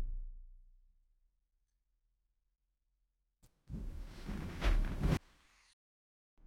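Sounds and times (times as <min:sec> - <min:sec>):
loud and impactful book sound effect: 0:03.7 - 0:05.2.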